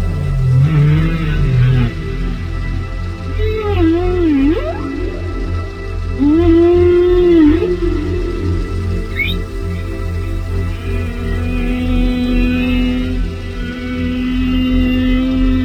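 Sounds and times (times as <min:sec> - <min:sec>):
whale moans: 0:00.0 - 0:15.6
brief high chirp: 0:09.0 - 0:09.6.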